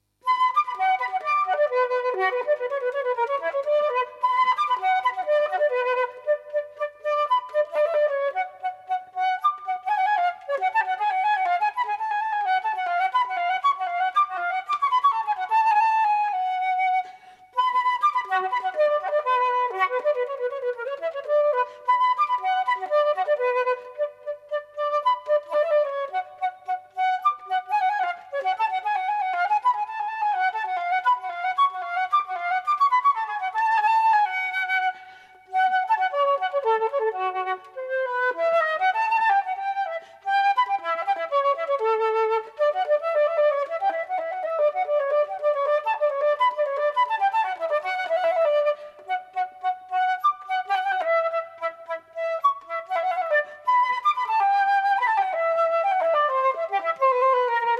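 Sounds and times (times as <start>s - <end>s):
solo flute playing a baroque piece: 0.0s - 57.7s.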